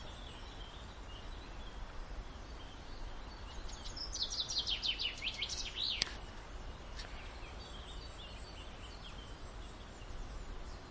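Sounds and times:
common chaffinch song, Fringilla coelebs: 0.0s - 10.9s
steady background hiss: 0.0s - 10.9s.

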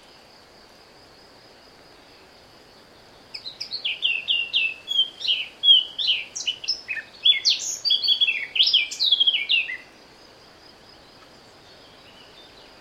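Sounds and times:
Eurasian blackcap Sylvia atricapilla song: 3.3s - 9.9s.

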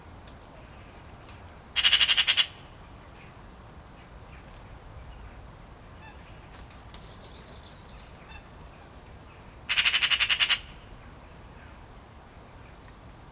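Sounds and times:
Eurasian magpie Pica pica harsh rattling chatter: 1.8s - 2.6s, 9.7s - 10.8s.

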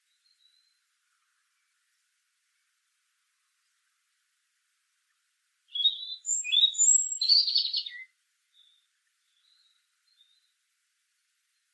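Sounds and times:
European robin Erithacus rubecula singing: 5.7s - 10.6s.

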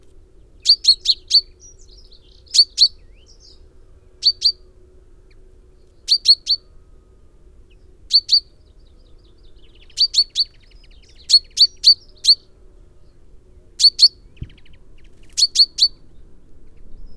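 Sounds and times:
faint low hum: 0.0s - 17.1s
common chaffinch Fringilla coelebs metallic calls: 0.6s - 3.6s, 4.2s - 4.6s, 6.1s - 6.6s, 8.1s - 8.5s, 9.5s - 12.4s, 13.8s - 16.0s.

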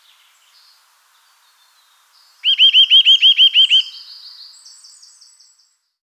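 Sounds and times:
Eurasian nuthatch Sitta europaea giving down-curved piping notes: 2.4s - 4.0s.

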